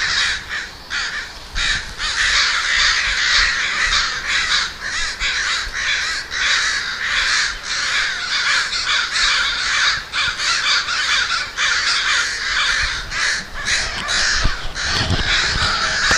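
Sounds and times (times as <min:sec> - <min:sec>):
flock of crows cawing: 0:00.0 - 0:16.1.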